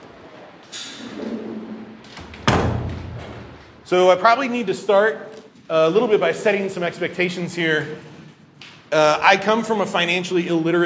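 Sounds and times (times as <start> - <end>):
door closing with a single solid thud: 2.0 - 3.7
speech: 3.9 - 8.1, 8.9 - 10.8.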